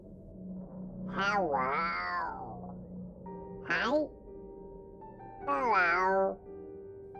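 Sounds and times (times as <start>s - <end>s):
cat meowing loudly downstairs at night: 1.1s - 2.6s, 3.7s - 4.1s, 5.5s - 6.4s
speech: 1.2s - 2.4s, 3.7s - 4.2s, 5.5s - 6.4s.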